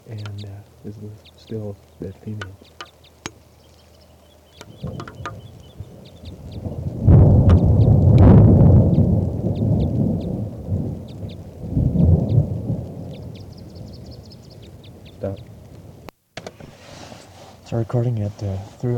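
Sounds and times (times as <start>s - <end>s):
steady rain hiss during a storm: 0.0s - 18.9s
speech: 0.1s - 2.8s, 17.8s - 18.9s
deep rolls of thunder during a storm: 4.8s - 14.2s.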